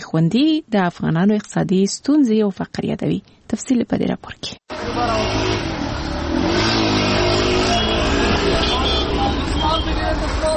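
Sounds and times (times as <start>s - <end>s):
speech: 0.1s - 6.8s
car accelerating: 4.7s - 10.5s
city car traffic engines roaring in an Afghan town during Eid: 4.7s - 10.5s.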